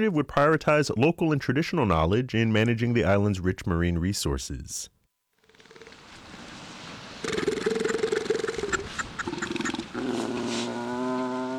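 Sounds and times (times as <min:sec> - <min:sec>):
speech: 0:00.0 - 0:05.0
crowd of fur seals barking and bleating in St. Paul Alaska: 0:07.1 - 0:11.5.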